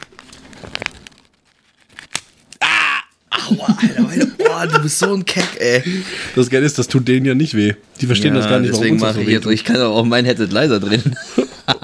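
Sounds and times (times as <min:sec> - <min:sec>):
cigarette pack paper crinkling as the pack is opened: 0:00.0 - 0:02.6
laughter: 0:02.6 - 0:06.1, 0:11.0 - 0:11.8
speech: 0:03.7 - 0:11.8.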